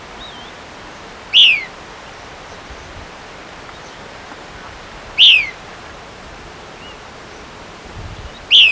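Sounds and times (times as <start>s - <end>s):
White-crested Elaenia downslurred calls in Ecuador: 1.3s - 1.7s, 5.2s - 5.6s.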